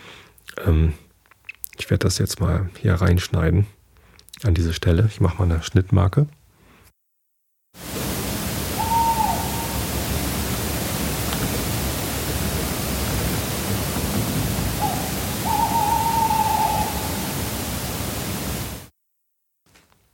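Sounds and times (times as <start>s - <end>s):
speech: 0.6s - 1.0s, 1.8s - 3.8s, 4.4s - 6.4s
steady hiss from a very sensitive recording setting: 7.8s - 18.9s
little owl hooting at night: 8.5s - 10.5s, 14.7s - 18.0s.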